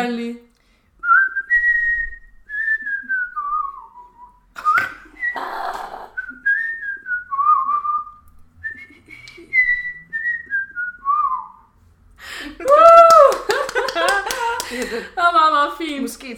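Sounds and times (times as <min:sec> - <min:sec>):
speech: 0:00.0 - 0:00.5
person whistling a bouncy pop tune: 0:01.0 - 0:05.4, 0:06.1 - 0:11.7
person laughing: 0:04.6 - 0:06.2, 0:12.6 - 0:15.2.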